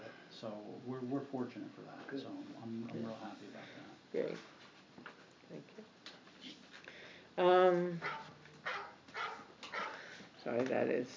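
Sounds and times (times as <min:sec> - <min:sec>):
speech: 0:00.4 - 0:06.0, 0:07.4 - 0:08.2, 0:10.4 - 0:11.1
dog barking and whimpering: 0:08.0 - 0:10.0.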